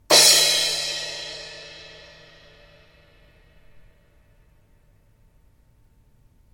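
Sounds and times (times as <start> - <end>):
16in Constantinople crash cymbal: 0.1 - 4.6.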